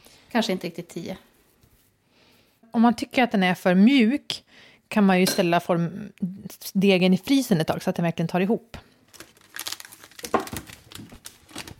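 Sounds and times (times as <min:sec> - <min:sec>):
speech: 0:00.3 - 0:01.3, 0:02.8 - 0:08.8
plastic marzipan package crinkling as it is opened: 0:09.0 - 0:11.7
plastic marzipan package tearing: 0:09.1 - 0:11.7.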